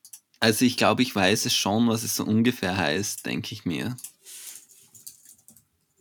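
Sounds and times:
speech: 0:00.4 - 0:04.1
typing on a keyboard to look something up: 0:03.9 - 0:05.7.

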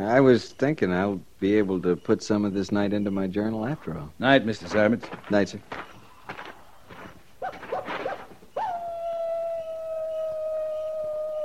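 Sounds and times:
speech: 0:00.0 - 0:05.9
coyote yipping and howling: 0:07.4 - 0:11.4.

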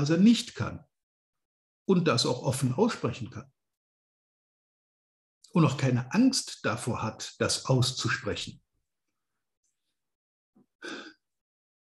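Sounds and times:
speech: 0:00.0 - 0:00.9, 0:01.9 - 0:03.6, 0:05.5 - 0:08.6, 0:10.8 - 0:11.1
deep breath drawn close to the microphone: 0:10.8 - 0:11.2.

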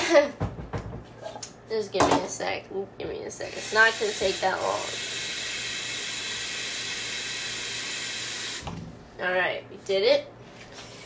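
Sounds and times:
speech: 0:00.1 - 0:00.4, 0:01.7 - 0:05.2, 0:09.2 - 0:10.4
faucet water running into a pot: 0:03.5 - 0:08.7.

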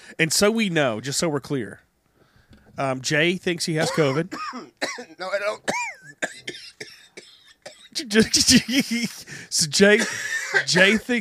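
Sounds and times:
speech: 0:00.1 - 0:01.9, 0:02.8 - 0:06.8, 0:08.0 - 0:11.1
short dry coughs: 0:03.8 - 0:08.5, 0:09.9 - 0:11.1
person talking or laughing: 0:08.0 - 0:11.1.

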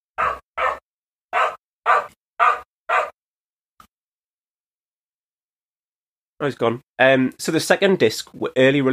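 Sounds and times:
dog barking: 0:00.2 - 0:03.2
speech: 0:06.4 - 0:08.9.

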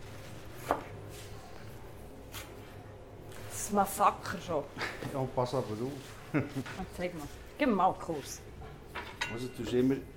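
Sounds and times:
low steady noise: 0:00.0 - 0:10.1
knife chopping onions on a board: 0:00.6 - 0:00.9
speech: 0:03.7 - 0:08.5, 0:09.3 - 0:10.1.

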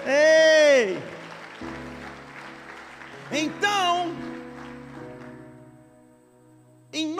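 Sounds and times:
church audience clapping during a sermon: 0:00.0 - 0:05.6.

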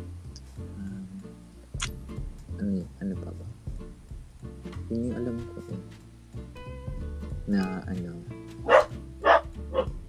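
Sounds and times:
low steady hum: 0:00.0 - 0:08.4
speech: 0:04.9 - 0:05.6, 0:07.5 - 0:08.3
dogs barking: 0:08.6 - 0:10.0.

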